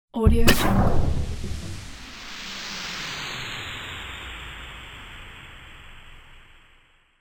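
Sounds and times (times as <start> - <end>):
futuristic alien geyser deploying: 0.4 - 4.2.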